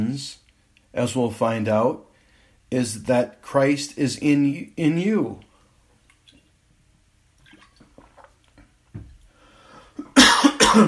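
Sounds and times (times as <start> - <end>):
speech: 0.0 - 2.1, 2.7 - 5.5
man coughing from a dry throat: 10.0 - 10.8
man making faint throat sounds: 10.0 - 10.8.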